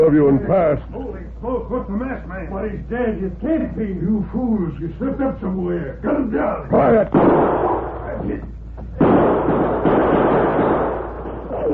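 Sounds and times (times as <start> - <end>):
speech: 0.0 - 8.6
steady low hum: 0.0 - 11.7
gunshots fired toward men sheltering behind a barn corner: 7.1 - 8.0, 9.0 - 11.7.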